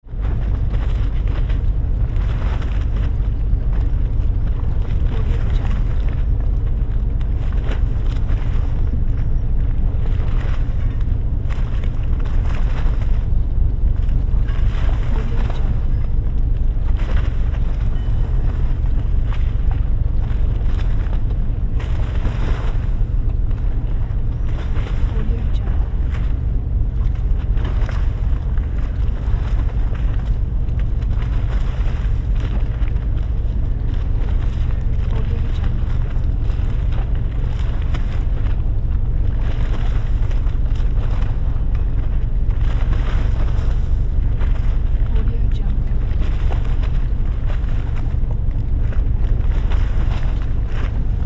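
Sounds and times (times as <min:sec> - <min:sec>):
large ship engine idling: 0:00.1 - 0:51.2
water splashing: 0:00.1 - 0:51.2.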